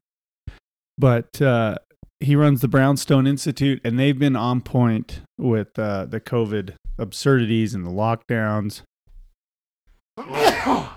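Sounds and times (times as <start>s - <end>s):
speech: 1.0s - 8.9s, 10.2s - 10.9s
person sneezing: 10.2s - 10.9s.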